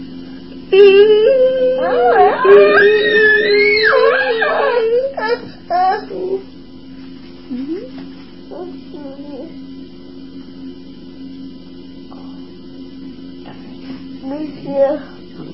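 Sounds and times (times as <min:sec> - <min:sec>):
whimpering crying: 0:00.7 - 0:06.5.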